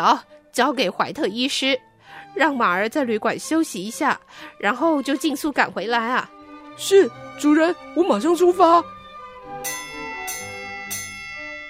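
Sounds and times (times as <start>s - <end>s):
speech: 0.0s - 9.0s
bell ringing at an estate gate: 9.6s - 11.6s.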